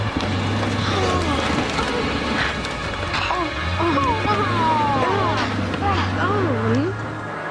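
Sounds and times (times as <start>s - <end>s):
crashing and wrenching metal as a monster tears apart a bus: 0.0s - 7.2s
steady engine rumble: 0.0s - 7.4s
voices shouting: 0.2s - 7.0s.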